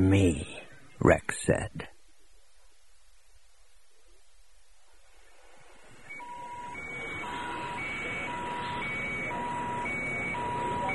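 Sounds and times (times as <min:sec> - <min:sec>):
speech: 0:00.0 - 0:01.9
warbling all-clear sirens at a spaceport: 0:06.1 - 0:10.9.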